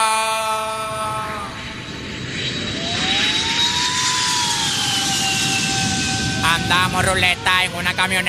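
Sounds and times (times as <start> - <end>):
jet airplane landing with whining engines: 0.0 - 8.2
speech: 6.8 - 8.2.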